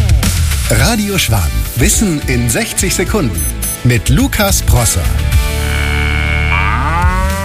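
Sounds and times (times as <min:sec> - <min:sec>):
speech: 0:00.7 - 0:05.4
cow mooing: 0:05.4 - 0:07.4.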